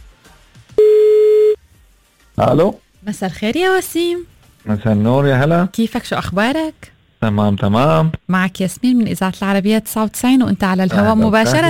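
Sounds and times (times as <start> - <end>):
telephone line ringing while calling a prize winner: 0.8 - 1.6
speech: 2.4 - 11.6.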